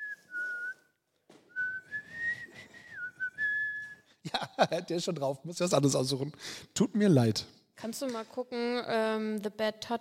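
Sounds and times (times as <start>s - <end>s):
person whistling a melody: 0.0s - 0.9s, 1.5s - 4.1s
speech: 4.6s - 9.9s.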